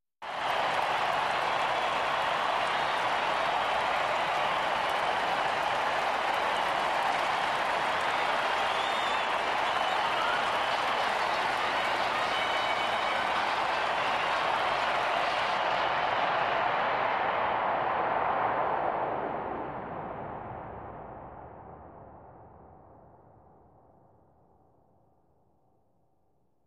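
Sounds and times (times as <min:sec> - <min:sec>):
crowd in a sports arena: 0:00.2 - 0:20.9.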